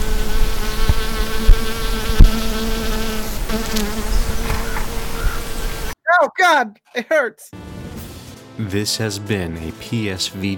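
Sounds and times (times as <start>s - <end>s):
bees buzzing: 0.0s - 6.0s
speech: 6.4s - 7.6s, 8.6s - 10.5s.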